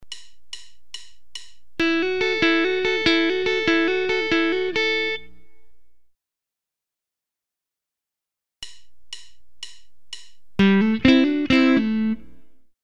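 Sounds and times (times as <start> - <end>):
guitar single-note and double-stop hammer-ons: 1.8 - 5.4, 8.6 - 12.6.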